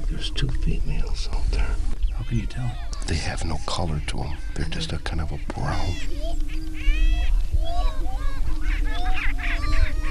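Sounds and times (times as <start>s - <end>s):
male grouse displaying and calling at a lek: 0.0s - 10.0s
speech: 0.2s - 8.2s.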